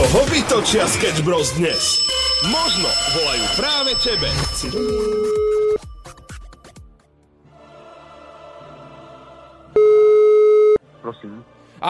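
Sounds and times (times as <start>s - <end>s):
speech: 0.6s - 5.7s, 11.0s - 11.8s
steady electronic telephone tone: 2.0s - 5.9s, 9.8s - 10.8s.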